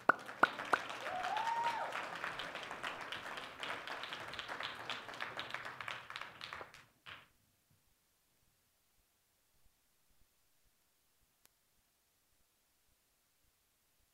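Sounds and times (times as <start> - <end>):
crowd of people applauding: 0.0 - 7.2
whoops and cheers: 0.4 - 2.4.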